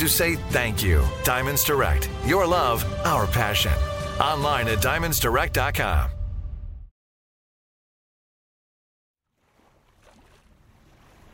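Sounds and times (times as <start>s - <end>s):
speech: 0.0s - 6.2s
deep rumble: 2.0s - 6.9s
ocean waves lapping around a ship at magic hour: 9.2s - 11.3s.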